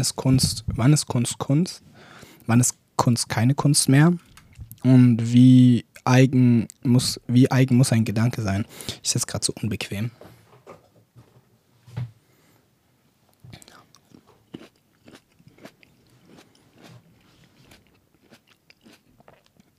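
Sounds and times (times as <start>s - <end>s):
speech: 0.0s - 10.3s
loud chewing with wet crunches while eating: 13.6s - 19.7s.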